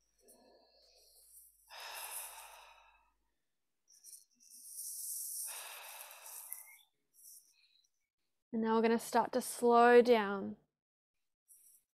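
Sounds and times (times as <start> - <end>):
deep full breathing during a breathwork exercise: 0.2 - 3.2, 5.4 - 6.8
speech: 8.6 - 10.6.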